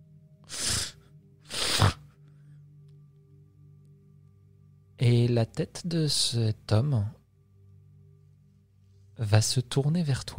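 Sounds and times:
man sniffing through the nose: 0:00.5 - 0:02.1
speech: 0:05.0 - 0:07.2, 0:09.2 - 0:10.3.

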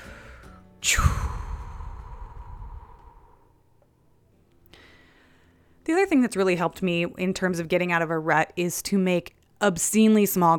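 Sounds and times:
deep breath and exhale: 0:00.0 - 0:03.6
speech: 0:00.8 - 0:01.2, 0:05.9 - 0:10.5.

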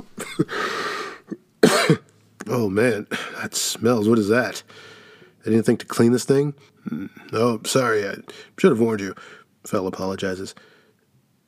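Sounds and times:
harsh fit of coughing with raspy hacking breath: 0:00.2 - 0:02.1
speech: 0:00.4 - 0:00.7, 0:01.9 - 0:10.8.

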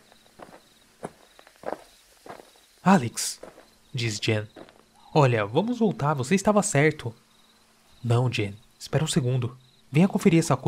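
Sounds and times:
footsteps crunching on the ground: 0:00.0 - 0:04.9
faint steady insect-like whine: 0:00.0 - 0:10.6
speech: 0:02.9 - 0:04.6, 0:05.2 - 0:07.2, 0:08.0 - 0:10.6.

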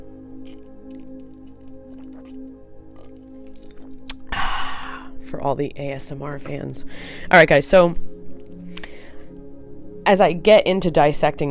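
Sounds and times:
person sipping and gulping drinking water: 0:00.4 - 0:04.7
speech: 0:05.3 - 0:08.1, 0:10.1 - 0:11.4.

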